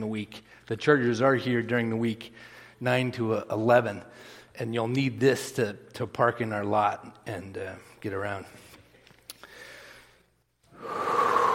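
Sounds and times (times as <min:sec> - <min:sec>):
speech: 0:00.0 - 0:08.6
deep breath drawn by a speaker at a church: 0:09.4 - 0:11.5.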